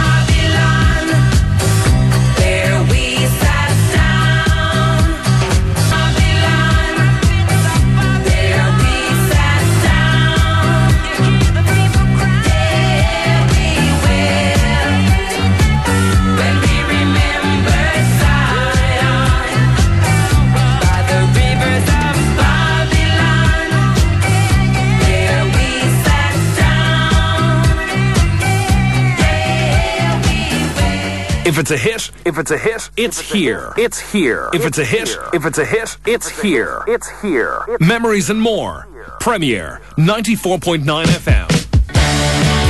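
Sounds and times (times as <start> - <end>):
pop single with full band and layered vocals: 0.0 - 31.6
speech: 31.6 - 41.6.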